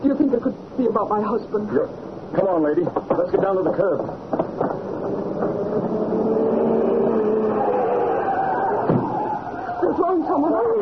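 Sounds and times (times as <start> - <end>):
speech: 1.0 - 4.3, 10.0 - 10.7
vehicle engine rumbling: 2.9 - 9.9.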